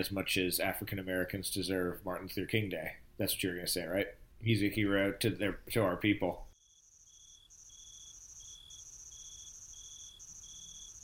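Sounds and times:
speech: 0:00.0 - 0:06.5
crickets chirping: 0:06.6 - 0:11.0.

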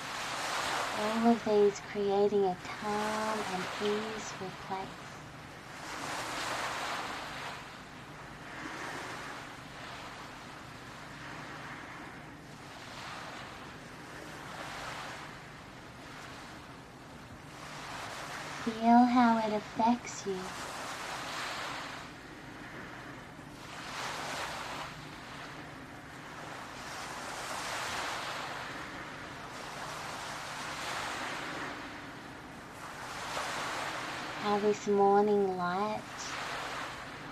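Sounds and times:
light breeze hissing over the water: 0:00.0 - 0:37.3
low constant rumble of surf: 0:00.0 - 0:37.3
soft gentle ocean waves lapping: 0:00.0 - 0:37.3
speech: 0:01.0 - 0:05.1, 0:18.8 - 0:20.6, 0:34.6 - 0:36.3.

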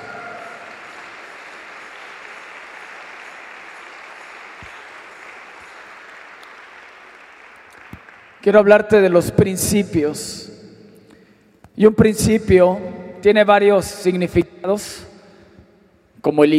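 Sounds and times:
church audience applauding: 0:00.0 - 0:08.7
speech: 0:08.4 - 0:10.5, 0:11.8 - 0:15.1, 0:16.2 - 0:16.5.

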